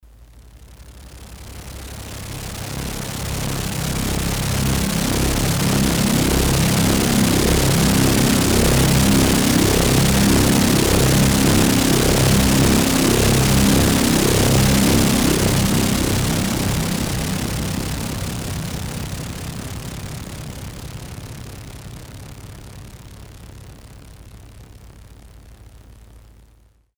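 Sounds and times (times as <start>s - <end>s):
Korg DS-8 synthesizer chopper factory patch: 1.3s - 22.2s.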